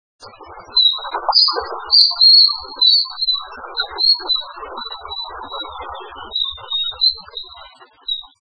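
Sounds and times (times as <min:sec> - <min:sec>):
kingfisher calling: 0:00.7 - 0:08.3.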